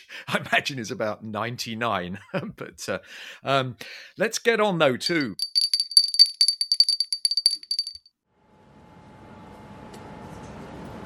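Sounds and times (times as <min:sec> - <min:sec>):
speech: 0:00.0 - 0:05.5
small high-pitched bell ringing: 0:05.1 - 0:08.1.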